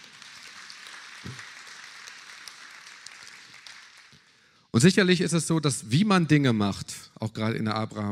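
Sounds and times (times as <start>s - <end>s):
audience at a church service applauding: 0.0s - 4.4s
speech: 4.8s - 8.0s.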